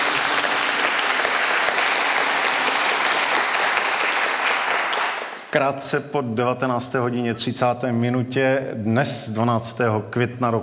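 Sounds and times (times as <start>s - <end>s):
studio audience applauding: 0.0s - 5.6s
speech: 5.5s - 10.6s.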